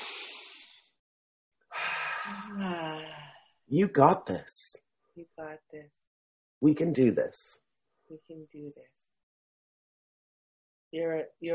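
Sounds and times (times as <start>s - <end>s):
person taking a slow deep breath: 0.0s - 0.8s, 1.7s - 3.5s
soft voiced sigh: 1.7s - 3.4s
speech: 2.3s - 3.1s, 3.7s - 4.6s, 5.2s - 6.0s, 6.6s - 9.0s, 10.9s - 11.5s.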